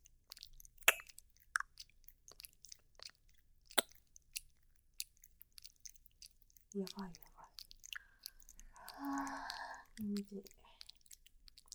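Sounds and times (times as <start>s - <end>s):
mouth chewing and biting on a thigh: 0.0s - 11.7s
speech: 6.8s - 7.3s, 10.0s - 10.6s.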